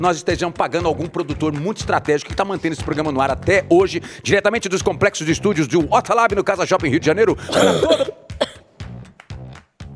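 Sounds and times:
speech: 0.0 - 8.2
person clearing throat: 7.4 - 8.7
person coughing: 7.4 - 8.7.

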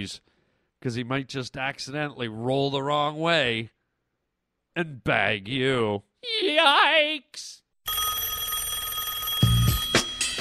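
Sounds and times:
speech: 0.0 - 3.8, 4.8 - 7.6
telephone ringing with bright electronic tone: 7.8 - 10.3.

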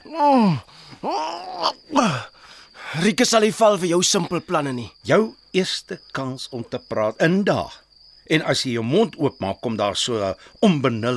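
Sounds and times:
man moaning through a cloth gag: 0.0 - 2.3
speech: 0.0 - 2.3, 3.0 - 11.1.

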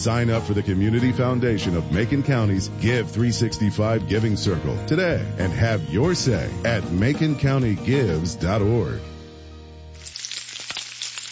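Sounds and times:
speech: 0.0 - 9.1
sausage strips sizzling in a frying pan: 9.9 - 11.2.

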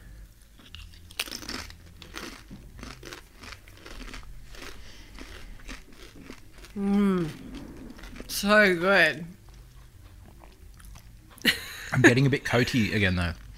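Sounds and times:
crunching Cheese Supreme Doritos being chewed: 0.5 - 8.4
speech: 6.8 - 7.4, 8.4 - 9.4, 12.0 - 13.4.

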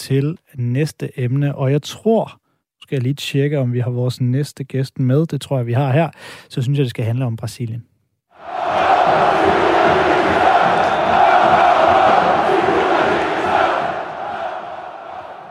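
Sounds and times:
speech: 0.0 - 8.6
large agitated football crowd roaring and shouting during rioting after a derby match: 8.4 - 15.4.

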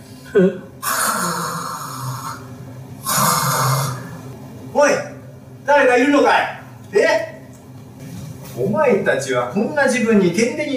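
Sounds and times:
speech: 0.3 - 0.7, 6.0 - 6.6, 8.6 - 10.7
performer's voice imitating loud rasping snoring: 0.8 - 4.2.

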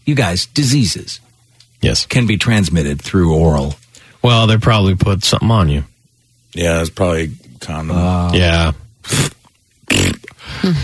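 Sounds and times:
speech: 0.0 - 5.9, 6.5 - 9.4, 10.6 - 10.8
mouth-made fart noise: 9.0 - 10.4.

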